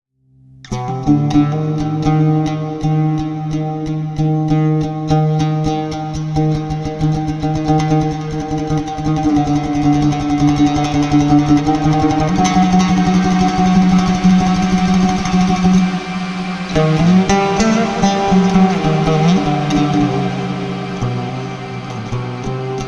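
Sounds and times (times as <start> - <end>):
dark fearful middle eastern music: 0.7 - 22.8.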